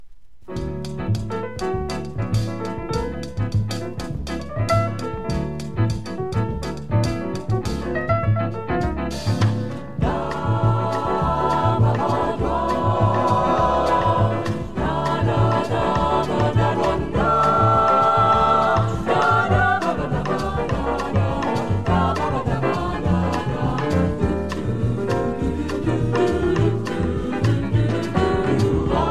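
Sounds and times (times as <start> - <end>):
vocal jazz: 0.6 - 29.0.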